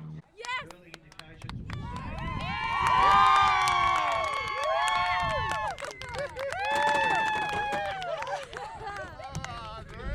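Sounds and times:
beach crowd clapping: 0.4 - 10.1
large outdoor beach crowd cheering at a surf contest: 1.8 - 9.0.

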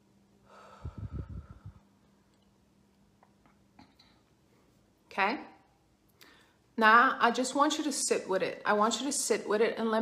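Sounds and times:
faint low hum: 0.0 - 7.4
deep breath exhaled during a guided relaxation exercise: 0.4 - 1.8
speech: 5.2 - 5.5, 6.8 - 9.9.

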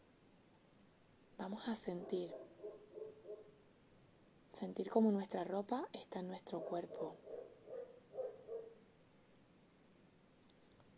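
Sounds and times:
speech: 1.4 - 2.4, 4.6 - 7.2
dog barking woofs: 2.0 - 3.6, 6.5 - 8.8.

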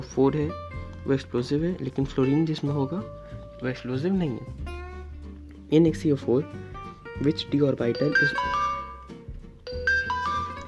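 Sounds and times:
speech: 0.1 - 4.6, 5.7 - 8.6
phone notification chime: 7.8 - 9.1, 9.7 - 10.6.

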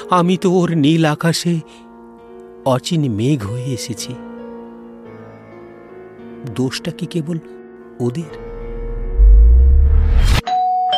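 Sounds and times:
speech: 0.1 - 1.8, 2.6 - 4.3, 6.4 - 8.5
loud rising whoosh: 8.4 - 10.4
doorbell electronic chime in a home: 10.4 - 10.9.

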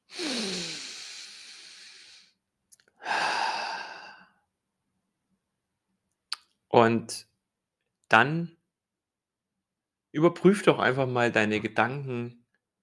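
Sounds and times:
deep breathing in through the nose and out through the mouth: 0.0 - 2.4, 3.0 - 4.4
speech: 6.8 - 7.3, 8.1 - 8.6, 10.1 - 12.4.

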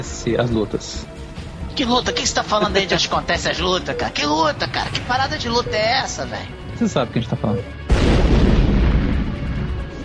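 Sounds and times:
speech: 0.0 - 1.2, 1.8 - 8.6
loud explosion with deep booming low end: 7.9 - 9.8.

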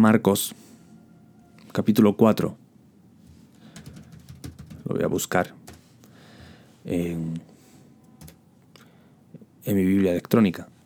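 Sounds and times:
speech: 0.0 - 0.7, 1.8 - 2.6, 4.9 - 5.6, 6.8 - 7.5, 9.6 - 10.7
quiet hum: 0.0 - 10.8
typing on a computer keyboard: 3.7 - 5.0, 5.6 - 5.9, 8.2 - 8.4.

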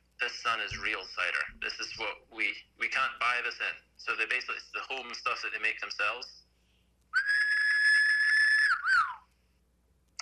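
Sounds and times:
speech: 0.2 - 6.4
person whistling: 7.2 - 9.3.

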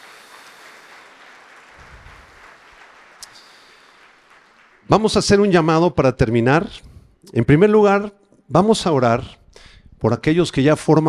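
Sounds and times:
church audience applauding: 0.0 - 5.6
speech: 4.9 - 9.4, 10.0 - 11.0.

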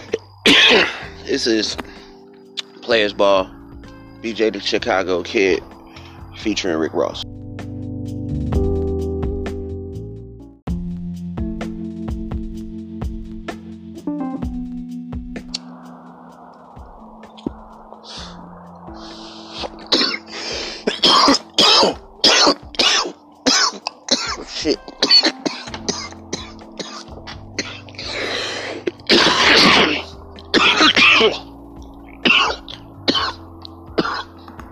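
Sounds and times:
prolonged coughing fit with harsh bursting coughs: 0.0 - 1.2, 19.6 - 31.5, 32.2 - 34.4
throat clearing: 0.0 - 1.2, 19.6 - 28.2, 28.8 - 31.5, 32.2 - 34.4
faint music: 0.0 - 9.8, 11.4 - 34.7
sneeze-like bursts: 0.4 - 1.2, 19.1 - 31.5, 32.2 - 33.4
speech: 0.7 - 1.8, 2.9 - 3.6, 4.2 - 5.7, 6.4 - 7.4.

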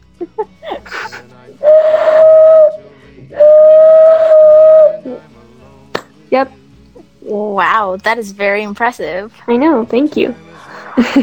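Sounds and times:
laughter: 0.0 - 1.6, 10.4 - 11.2
hand whistle imitating a train whistle: 1.6 - 5.2
speech: 6.3 - 6.6, 7.6 - 11.2.

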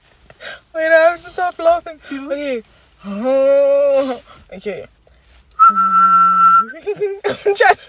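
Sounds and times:
speech: 1.2 - 5.0, 5.7 - 7.8
person whistling a held note with vibrato: 5.5 - 6.8.

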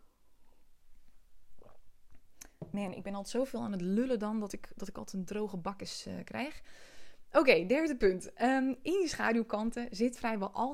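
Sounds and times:
person sipping water: 0.2 - 2.6
speech: 2.8 - 10.7.

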